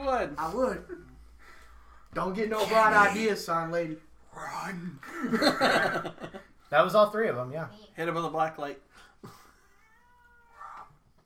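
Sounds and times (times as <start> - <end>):
speech: 0.1 - 1.0, 2.1 - 9.4
laughter: 5.0 - 6.5
cat meowing and yowling: 9.7 - 10.9.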